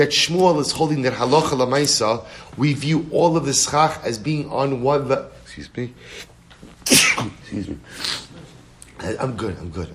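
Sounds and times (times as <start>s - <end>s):
speech: 0.0s - 6.3s, 6.9s - 8.3s, 9.0s - 9.9s
sneeze: 6.8s - 7.4s.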